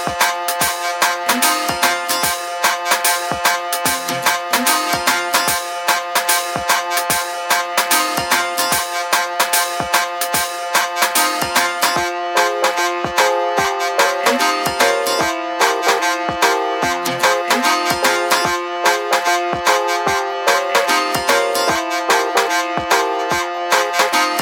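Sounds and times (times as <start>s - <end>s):
electronic sounds: 0.2s - 24.4s.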